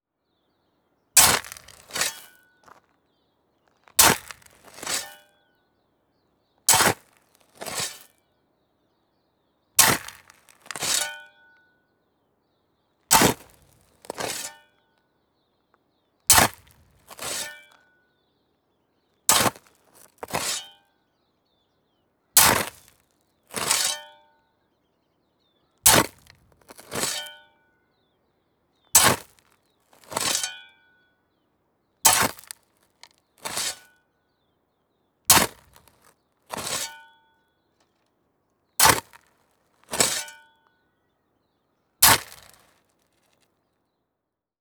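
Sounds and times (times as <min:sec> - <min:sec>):
digging: 0:01.2 - 0:02.4, 0:04.0 - 0:05.2, 0:06.7 - 0:08.1, 0:09.8 - 0:11.2, 0:13.1 - 0:14.6, 0:16.3 - 0:17.6, 0:19.3 - 0:20.7, 0:22.4 - 0:22.9, 0:23.5 - 0:24.1, 0:25.9 - 0:27.4, 0:29.0 - 0:29.4, 0:30.0 - 0:30.6, 0:32.1 - 0:32.6, 0:33.4 - 0:33.9, 0:35.3 - 0:35.9, 0:36.5 - 0:37.1, 0:38.8 - 0:39.2, 0:39.9 - 0:40.4, 0:42.0 - 0:42.6.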